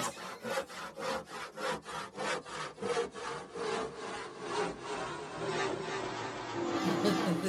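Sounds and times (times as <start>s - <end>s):
hand saw sawing through wood: 0.0s - 6.0s
laughter: 6.8s - 7.4s.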